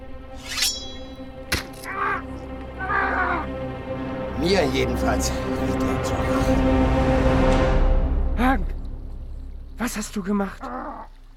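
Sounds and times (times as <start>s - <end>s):
bird cawing: 1.8s - 3.6s, 10.6s - 11.3s
speech: 4.4s - 7.8s, 8.4s - 8.8s, 9.8s - 10.8s.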